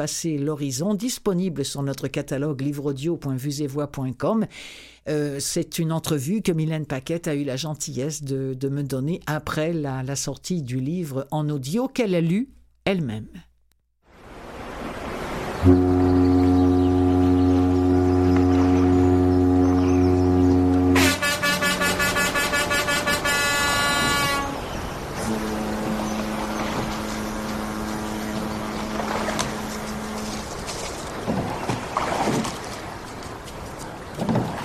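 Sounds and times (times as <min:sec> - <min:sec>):
speech: 0:00.0 - 0:13.5, 0:15.6 - 0:16.0
harbor ambience: 0:15.4 - 0:33.7
deep ship foghorn blare: 0:15.5 - 0:31.4
bright rapidly pulsing ship horn: 0:15.6 - 0:31.4.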